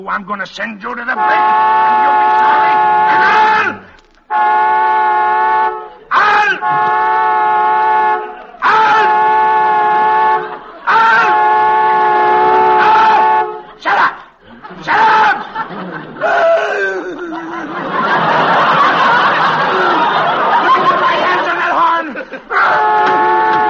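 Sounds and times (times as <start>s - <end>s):
speech: 0.0s - 4.5s
car horn stuck on after a crash, blaring from a short: 1.1s - 13.8s, 22.6s - 23.6s
laughter: 1.2s - 3.9s, 5.7s - 23.6s.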